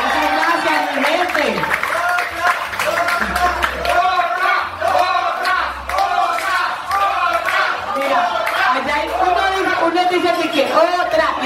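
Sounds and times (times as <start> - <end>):
live audience applause: 0.0 - 8.8
live audience cheering and shouting: 0.0 - 11.4.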